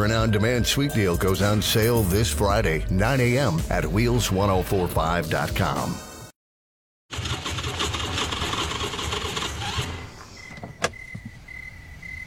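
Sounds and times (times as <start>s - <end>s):
speech: 0.0s - 6.1s
car engine running out of gas: 7.1s - 11.3s.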